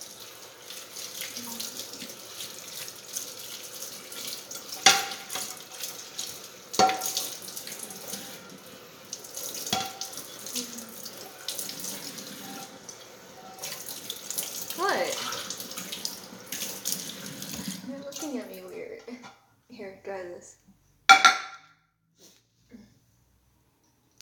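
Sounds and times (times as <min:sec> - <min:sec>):
faucet running into a sink while washing dishes: 0:00.0 - 0:18.7
plates and cutlery knocking together: 0:04.8 - 0:05.6, 0:06.8 - 0:07.4, 0:09.7 - 0:10.2, 0:21.1 - 0:21.6.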